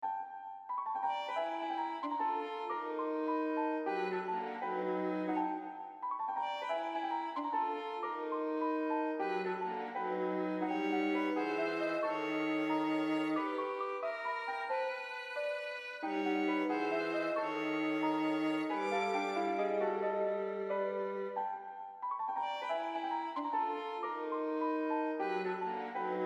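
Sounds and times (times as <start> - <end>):
piano in D major: 0.0 - 26.2
violin in D major: 0.9 - 26.2.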